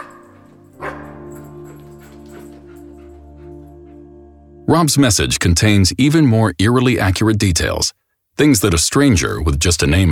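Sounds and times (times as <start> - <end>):
dog barking: 0.0 - 3.2
speech: 4.7 - 10.1.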